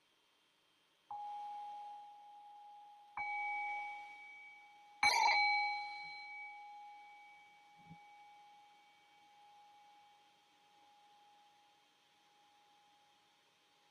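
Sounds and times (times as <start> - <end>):
meditation bell struck to open a guided meditation: 1.1 - 11.8.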